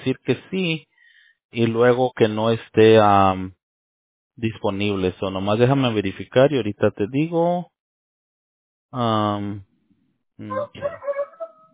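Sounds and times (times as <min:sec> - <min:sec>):
speech: 0:00.0 - 0:00.9, 0:01.5 - 0:03.6, 0:04.4 - 0:07.7, 0:08.9 - 0:09.7, 0:10.4 - 0:11.1
wavering uneven vocal sounds: 0:10.4 - 0:11.1
rooster crowing: 0:10.5 - 0:11.7.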